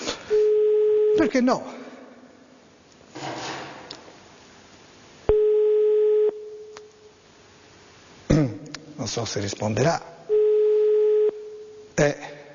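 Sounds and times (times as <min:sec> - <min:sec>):
telephone line tone while placing call: 0:00.4 - 0:01.2, 0:05.3 - 0:06.5, 0:10.3 - 0:11.6
speech: 0:01.2 - 0:01.7, 0:09.1 - 0:10.1, 0:12.0 - 0:12.4.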